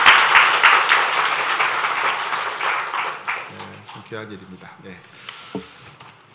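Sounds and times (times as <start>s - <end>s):
audience applause: 0.0s - 4.3s
speech: 4.1s - 5.7s.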